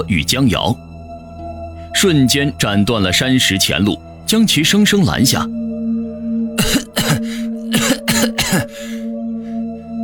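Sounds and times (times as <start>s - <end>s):
speech: 0.0s - 0.9s, 2.0s - 5.6s, 6.6s - 8.9s
person performing painful harsh coughing for a poisoned character: 6.6s - 9.1s.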